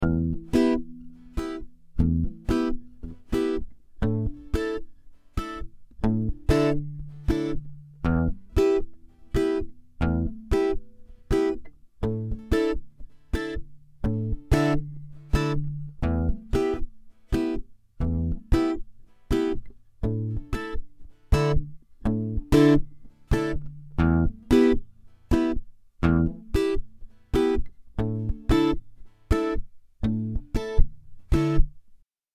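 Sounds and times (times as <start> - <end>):
twelve-string guitar improvisation: 0.0 - 31.8.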